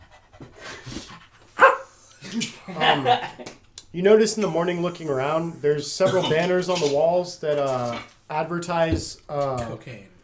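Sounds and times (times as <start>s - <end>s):
dog panting: 0.0s - 1.6s
dog barking: 1.6s - 1.9s
laughter: 2.2s - 3.6s
speech: 2.3s - 10.1s.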